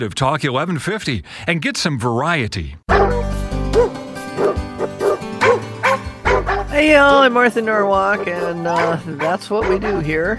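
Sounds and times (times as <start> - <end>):
speech: 0.0 - 3.9, 6.8 - 10.3
dog barking: 2.9 - 6.8, 8.1 - 10.2.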